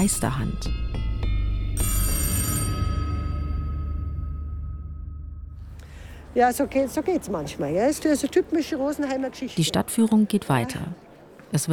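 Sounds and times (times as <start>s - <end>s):
speech: 0.0s - 0.9s, 6.4s - 11.7s
old-style telephone bell ringing: 1.8s - 4.3s
steady low hum: 2.6s - 6.3s.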